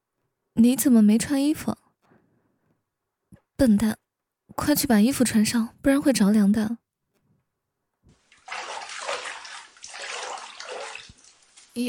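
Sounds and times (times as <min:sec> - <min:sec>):
speech: 0:00.6 - 0:01.8, 0:03.6 - 0:04.0, 0:04.6 - 0:06.8
bath water sloshing and splashing in a narrow bathtub: 0:08.1 - 0:11.8.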